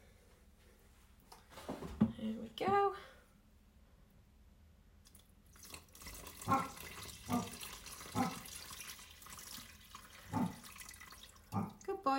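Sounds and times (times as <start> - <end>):
speech: 2.2 - 3.2
stock pouring into a cooking pot: 5.1 - 11.9.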